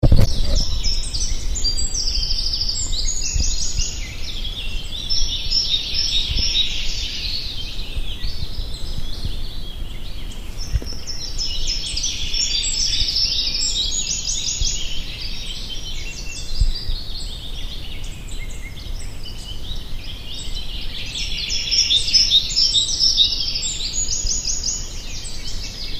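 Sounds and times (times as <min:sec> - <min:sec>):
birds singing: 0:00.0 - 0:25.9.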